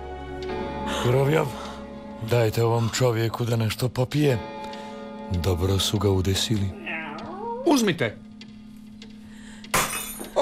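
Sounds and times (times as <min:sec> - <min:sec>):
speech: 0:00.5 - 0:04.5, 0:05.3 - 0:06.8, 0:07.6 - 0:08.2
drinking glass breaking: 0:09.7 - 0:10.3.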